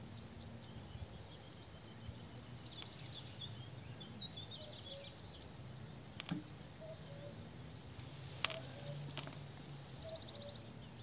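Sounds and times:
Eurasian blue tit Cyanistes caeruleus singing: 0.2 - 7.4, 8.1 - 11.0.

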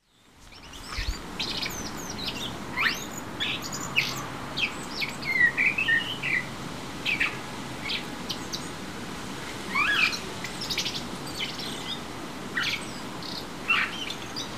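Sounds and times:
common blackbird Turdus merula calling: 0.6 - 6.5, 9.7 - 12.0, 12.6 - 14.5.

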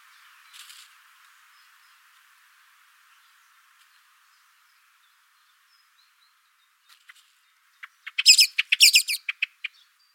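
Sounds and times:
common blackbird chattering call: 7.8 - 9.8.

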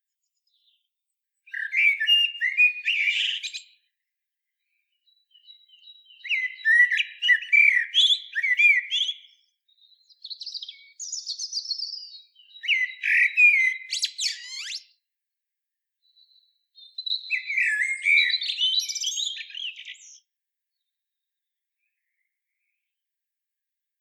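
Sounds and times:
common blackbird Turdus merula singing: 0.4 - 3.9, 4.6 - 15.0, 16.1 - 20.9.

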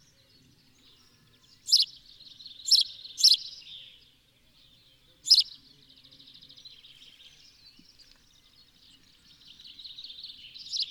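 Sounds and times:
quiet twittering: 0.8 - 3.6, 4.6 - 5.7, 6.4 - 10.8
house sparrow Passer domesticus chirping: 0.9 - 3.7, 4.8 - 5.6, 6.6 - 10.8.

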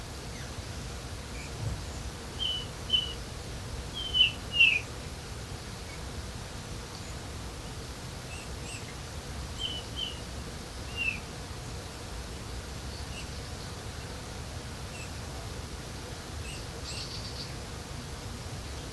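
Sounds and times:
low background noise: 0.0 - 18.9
Eurasian bullfinch Pyrrhula pyrrhula giving soft whistled calls: 2.4 - 3.2, 4.0 - 4.9.

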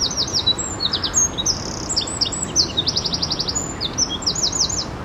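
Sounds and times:
Eurasian wren singing: 0.0 - 4.9.

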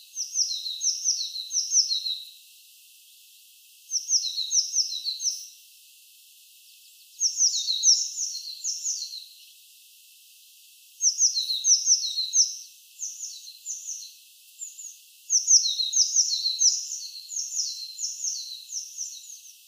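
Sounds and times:
light hiss: 0.0 - 19.6
Eurasian blue tit calling high clipped two-part notes: 0.2 - 2.3, 3.9 - 5.4, 7.2 - 9.3, 11.0 - 19.5.

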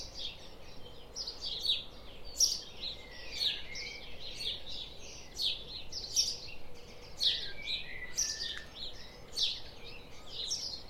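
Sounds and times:
house sparrow Passer domesticus chirping: 0.0 - 10.8.

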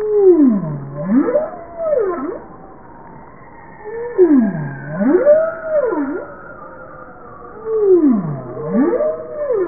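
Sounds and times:
bowhead whale swooping calls: 0.0 - 2.4, 3.8 - 6.3, 7.6 - 9.6.

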